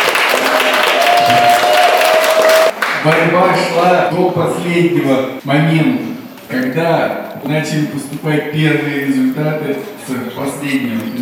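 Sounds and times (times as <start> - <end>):
large audience applauding for competition winner: 0.0 - 3.4
speech: 3.0 - 11.1.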